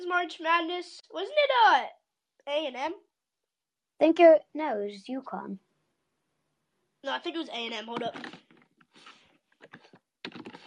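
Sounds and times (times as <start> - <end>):
speech: 0.1 - 3.1, 4.0 - 5.7, 7.0 - 8.4
typing on a computer keyboard: 9.6 - 10.6.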